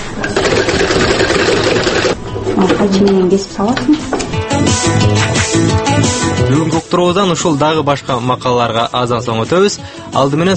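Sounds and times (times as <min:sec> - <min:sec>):
sewing machine running: 0:00.2 - 0:02.2
speech: 0:02.8 - 0:10.5.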